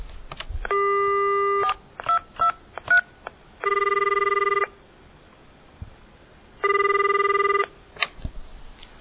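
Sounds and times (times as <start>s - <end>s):
telephone keypad dialing beeps: 0.7s - 3.0s, 3.6s - 4.7s, 6.6s - 7.7s.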